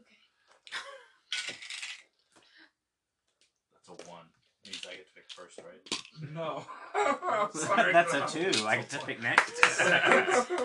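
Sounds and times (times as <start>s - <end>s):
dice clattering across a hard table: 1.3s - 2.1s
speech: 5.3s - 10.6s
laughter: 6.2s - 10.6s.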